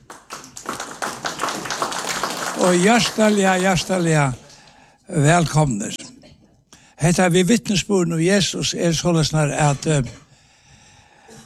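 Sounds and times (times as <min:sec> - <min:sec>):
audience applause at a gathering: 0:00.0 - 0:04.8
speech: 0:02.6 - 0:04.4, 0:05.1 - 0:06.0, 0:07.0 - 0:10.2.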